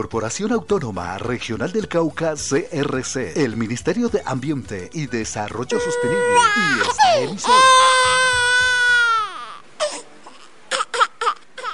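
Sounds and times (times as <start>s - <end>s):
speech: 0.0s - 8.2s
baby girl crying: 5.7s - 11.7s.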